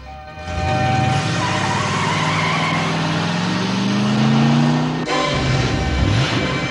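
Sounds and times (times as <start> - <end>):
car engine roaring as the vehicle accelerates away: 0.4 - 6.7
car tires squealing: 0.5 - 6.7.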